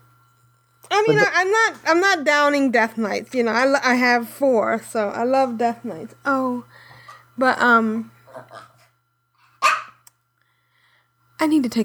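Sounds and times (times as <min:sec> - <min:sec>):
speech: 0:01.0 - 0:06.8, 0:07.4 - 0:08.7, 0:11.4 - 0:11.8
domestic dog barking: 0:09.6 - 0:10.0.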